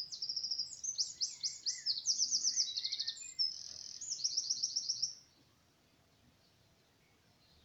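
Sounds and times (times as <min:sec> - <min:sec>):
Eurasian wren Troglodytes troglodytes singing: 0:00.0 - 0:05.2.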